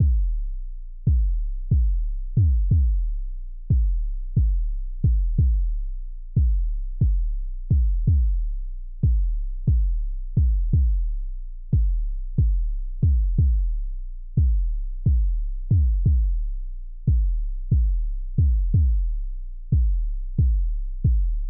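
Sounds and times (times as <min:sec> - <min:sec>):
kick drum: 0:00.0 - 0:05.8, 0:06.4 - 0:21.4.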